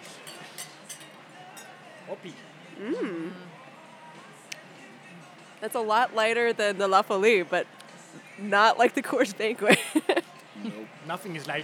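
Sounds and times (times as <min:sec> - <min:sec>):
beer glasses clinking in a toast during a beer tasting: 0:00.0 - 0:02.0
low murmur: 0:00.0 - 0:11.3
speech: 0:02.1 - 0:03.6, 0:05.6 - 0:11.6
laughter: 0:09.7 - 0:10.8.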